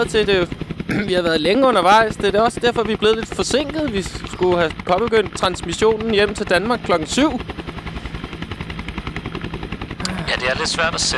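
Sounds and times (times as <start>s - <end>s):
speech: 0.0s - 7.5s, 10.4s - 11.1s
helicopter landing on an island, rotor blades beating: 0.0s - 11.1s.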